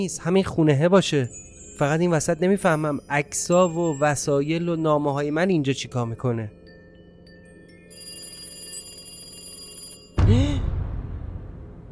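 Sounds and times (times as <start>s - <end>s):
speech: 0.0s - 6.6s
telephone bell ringing with a bright metallic jangle: 7.0s - 10.2s.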